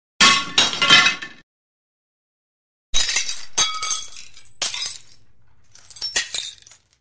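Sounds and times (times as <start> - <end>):
light glass dropping and hitting floor: 0.2 - 1.4, 3.0 - 6.9
light glass dropping and rattling: 0.2 - 1.4, 3.0 - 6.9.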